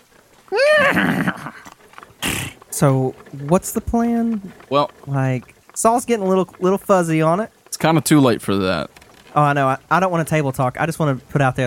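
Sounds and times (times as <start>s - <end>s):
faint scuffling of hooves on the ground: 0.0s - 11.6s
horse being spurred on whinnying: 0.5s - 2.6s
horse snorting: 0.8s - 2.7s
speech: 2.8s - 11.6s.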